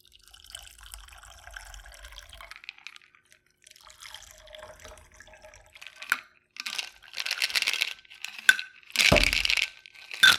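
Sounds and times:
shaken cocktail strained over ice into a glass: 0:00.3 - 0:03.0, 0:03.7 - 0:07.1, 0:09.0 - 0:10.3
ice clinking and cracking in a glass: 0:05.2 - 0:10.3.

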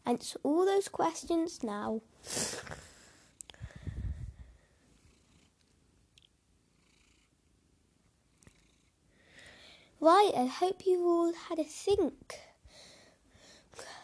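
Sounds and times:
speech: 0:00.1 - 0:02.9, 0:10.0 - 0:12.5
cat sniffs or snorts: 0:02.2 - 0:04.3
female cat purring while being given a belly rub: 0:02.7 - 0:09.1.

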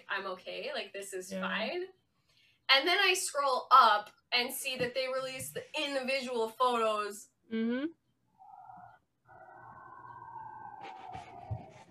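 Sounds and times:
speech: 0:00.2 - 0:02.0, 0:02.7 - 0:08.0
siren wailing outside in downtown Toronto: 0:08.4 - 0:11.8.

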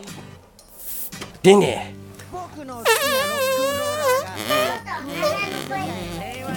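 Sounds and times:
speech: 0:01.4 - 0:02.0
mouth fart imitation: 0:02.8 - 0:06.5
playful vocal noises: 0:02.8 - 0:06.5.

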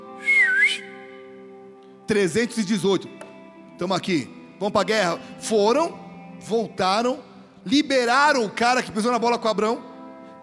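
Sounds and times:
short mouth whistle imitating a signal whistle: 0:00.0 - 0:01.3
speech: 0:02.1 - 0:03.2, 0:03.8 - 0:10.4.

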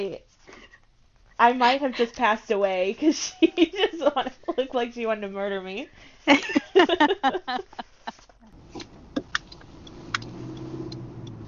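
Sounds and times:
speech: 0:00.0 - 0:00.3, 0:01.4 - 0:08.2
laughter: 0:03.1 - 0:04.8, 0:06.3 - 0:08.3
low car engine drone inside a car cabin: 0:08.4 - 0:11.4.

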